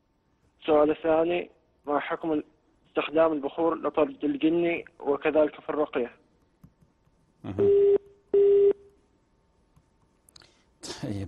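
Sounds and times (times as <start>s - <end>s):
speech: 0.7s - 6.2s, 7.4s - 7.8s, 11.0s - 11.2s
phone busy tone after a call dropped: 7.6s - 8.8s.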